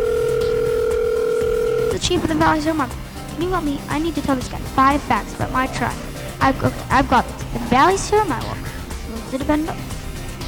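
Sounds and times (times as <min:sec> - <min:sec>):
telephone ringing with a steady electronic tone: 0:00.0 - 0:08.7
speech: 0:02.0 - 0:08.6, 0:09.3 - 0:09.9.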